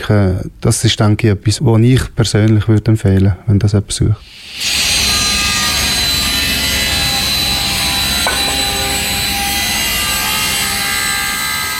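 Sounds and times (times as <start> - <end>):
speech: 0.1 - 4.8
saw cutting wood to size for a construction site: 4.2 - 11.7.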